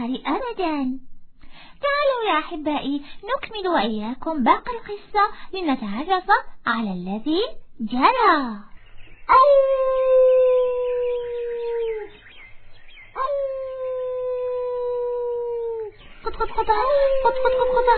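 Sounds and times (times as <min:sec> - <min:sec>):
speech: 0:00.1 - 0:01.1, 0:01.8 - 0:08.7, 0:09.3 - 0:10.6, 0:16.2 - 0:17.9
fox howling: 0:09.3 - 0:12.2, 0:13.2 - 0:17.9.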